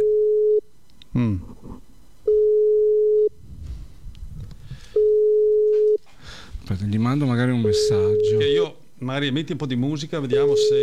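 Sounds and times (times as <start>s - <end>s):
phone line busy tone during an attempted video call: 0.0s - 0.6s, 2.3s - 3.4s, 5.0s - 6.0s, 7.6s - 8.6s, 10.4s - 10.8s
speech: 1.2s - 1.5s, 7.2s - 10.8s.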